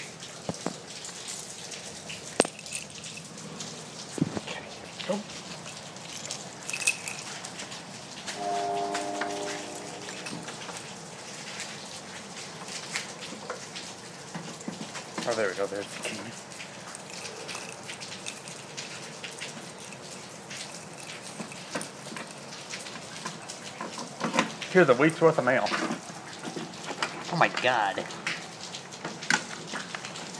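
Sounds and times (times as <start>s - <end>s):
drips and splashes: 0.0s - 30.3s
steady rain falling outside in northern Louisiana: 0.0s - 30.3s
speech: 5.1s - 5.3s, 15.4s - 16.5s, 24.8s - 26.0s, 27.4s - 28.2s
low humming tone: 8.4s - 10.8s.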